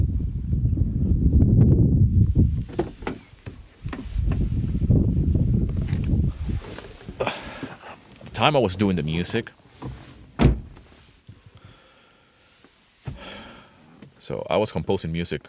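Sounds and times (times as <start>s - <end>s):
strong wind buffeting the microphone outdoors: 0.0s - 7.6s
speech: 8.4s - 9.6s, 14.3s - 15.4s.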